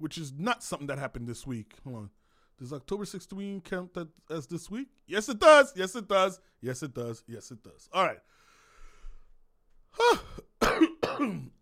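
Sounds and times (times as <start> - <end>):
speech: 0.0 - 8.4, 11.2 - 11.5
person clearing throat: 10.0 - 11.5
person coughing: 10.0 - 11.5.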